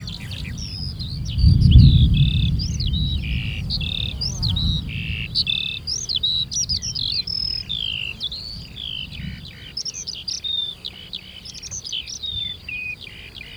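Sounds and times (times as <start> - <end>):
thunder at shadoof wells on the Hortobágy puszta: 0.0 - 9.5
Eurasian skylark on the Hortobágy puszta: 0.0 - 13.5.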